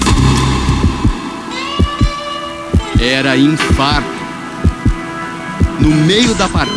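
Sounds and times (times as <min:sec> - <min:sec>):
steady electronic hum: 0:00.0 - 0:06.0
man's irregular heartbeat sound effect: 0:00.8 - 0:01.2, 0:01.8 - 0:05.0, 0:05.6 - 0:06.0, 0:06.6 - 0:06.7
speech: 0:03.0 - 0:04.2, 0:05.8 - 0:06.7.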